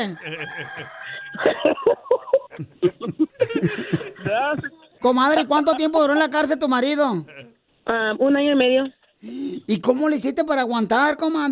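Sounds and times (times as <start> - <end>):
rooster crowing: 0.0 - 1.7
laughter: 0.0 - 6.4, 7.1 - 7.6
speech: 0.0 - 11.5.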